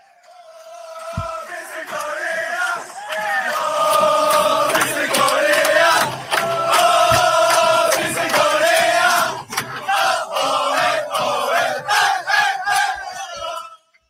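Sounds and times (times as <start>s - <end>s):
football fans chanting in unison in a stadium: 0.0s - 14.0s
sharp claps or drum hits: 1.0s - 10.2s.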